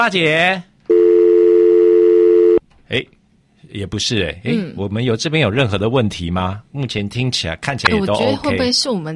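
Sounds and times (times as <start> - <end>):
speech: 0.0 - 0.7, 2.9 - 9.1
telephone line tone from an incoming call: 0.9 - 2.6.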